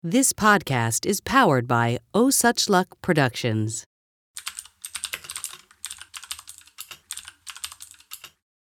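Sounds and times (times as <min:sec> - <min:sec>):
speech: 0:00.0 - 0:03.9
rapid typing on a computer keyboard: 0:04.4 - 0:08.4.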